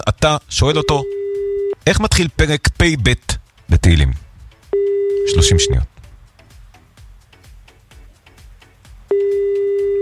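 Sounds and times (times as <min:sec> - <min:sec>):
speech: 0:00.1 - 0:01.2, 0:01.8 - 0:04.2, 0:05.2 - 0:05.9
telephone line tone while dialing a friend: 0:00.8 - 0:01.8, 0:04.8 - 0:05.8, 0:09.1 - 0:10.0.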